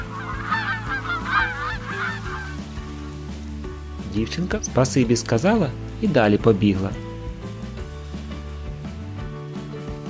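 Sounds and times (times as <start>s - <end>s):
several geese honking as they fly past: 0.0s - 3.0s
speech: 4.2s - 7.1s.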